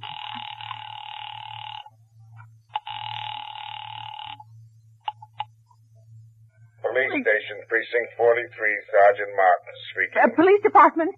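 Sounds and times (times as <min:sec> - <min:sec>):
telephone ringing on a call to a police department: 0:00.0 - 0:01.9, 0:02.7 - 0:04.5
steady low hum: 0:00.0 - 0:11.1
speech: 0:07.1 - 0:11.1.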